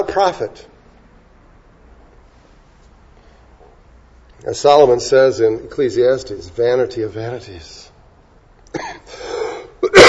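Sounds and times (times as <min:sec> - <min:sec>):
speech: 0:00.0 - 0:00.7, 0:04.4 - 0:07.9
person coughing: 0:08.7 - 0:10.0.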